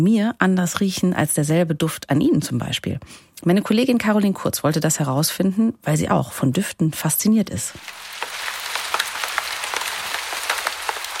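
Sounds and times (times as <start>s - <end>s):
speech: 0.0s - 8.4s
drips of rain on fallen leaves: 7.8s - 11.1s
steady rain pattering onto fallen leaves: 7.8s - 11.1s.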